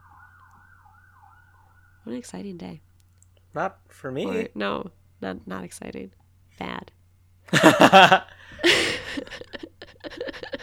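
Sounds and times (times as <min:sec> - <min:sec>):
ambulance siren wailing with sweeping pitch: 0:00.0 - 0:03.0
speech: 0:02.0 - 0:02.9, 0:03.6 - 0:06.9, 0:07.5 - 0:09.4
laughter: 0:04.2 - 0:04.5, 0:07.5 - 0:10.6.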